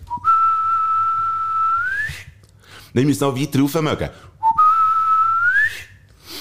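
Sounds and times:
gang's whistled recognition signal: 0.0s - 2.3s, 4.4s - 6.0s
speech: 2.9s - 4.3s.

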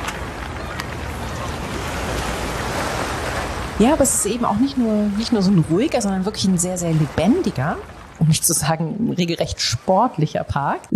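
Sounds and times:
water lapping near the shore at river waterfront: 0.0s - 10.9s
speech: 3.8s - 10.9s.

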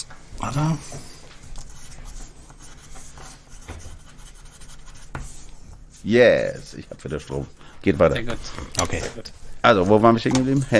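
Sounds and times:
speech: 0.4s - 1.1s, 6.0s - 10.7s
pen scratching on paper while writing: 1.6s - 5.5s.

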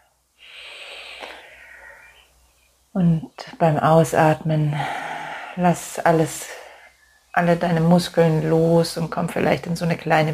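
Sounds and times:
deep slow inhalation during a guided relaxation: 0.1s - 2.3s, 4.7s - 5.6s
speech: 3.0s - 5.0s, 5.6s - 6.6s, 7.4s - 10.3s.

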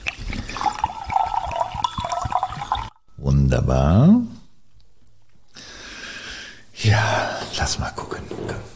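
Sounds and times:
rosé wine being poured into a glass: 0.0s - 3.0s
speech: 3.5s - 4.3s, 6.8s - 8.7s.

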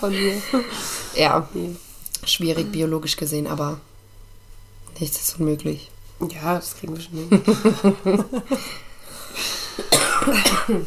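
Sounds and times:
speech: 0.0s - 3.9s, 5.0s - 10.8s
laughter: 7.3s - 8.8s
harsh coughs: 9.7s - 10.8s.

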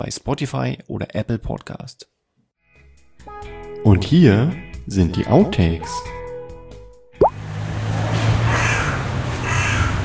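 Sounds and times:
speech: 0.0s - 2.1s, 3.8s - 6.2s
sudden sharp plop: 7.2s - 7.4s
hooded crow giving harsh drawn-out caws: 8.5s - 10.0s.

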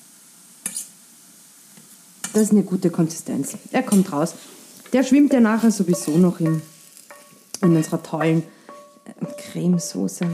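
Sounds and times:
kohlrabi sizzling in a frying pan: 0.0s - 10.3s
speech: 2.3s - 6.7s, 7.6s - 10.3s
kohlrabi stirred in a frying pan with scraping clinks: 3.4s - 10.3s.

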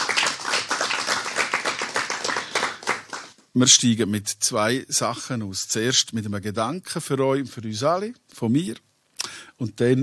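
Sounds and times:
audience applause: 0.0s - 3.4s
speech: 3.6s - 8.9s, 9.6s - 10.0s.

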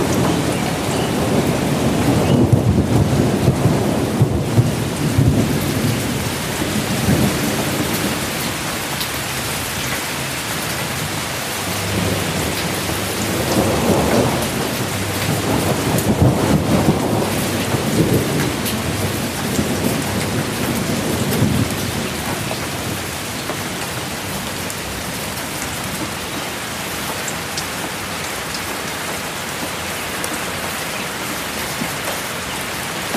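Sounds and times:
low rolling thunder: 0.0s - 8.8s, 11.6s - 25.4s
steady dense rain hissing: 0.0s - 33.0s.

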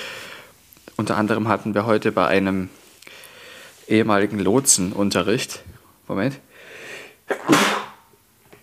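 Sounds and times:
sharp intake of breath: 0.0s - 0.6s, 3.1s - 3.8s, 6.5s - 7.9s
speech: 1.0s - 2.8s, 3.9s - 6.5s
person sneezing: 7.0s - 8.1s.

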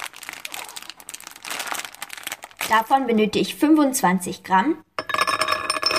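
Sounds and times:
plastic bag of hazelnuts crinkling as it is pulled open: 0.0s - 3.0s
speech: 2.7s - 4.9s.

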